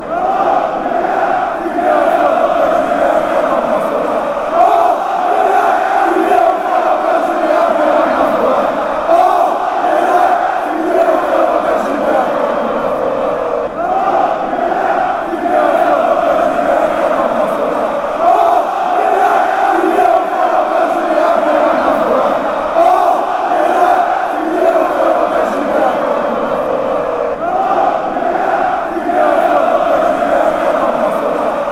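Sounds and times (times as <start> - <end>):
football fans chanting in Greece: 0.0 - 31.7.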